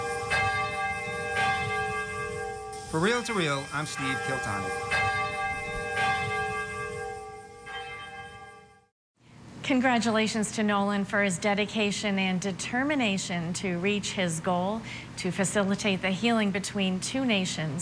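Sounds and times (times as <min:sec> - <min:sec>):
large church bell of Urakami Cathedral in Nagasaki tolling: 0:00.0 - 0:08.9
speech: 0:02.9 - 0:05.0, 0:09.7 - 0:17.8.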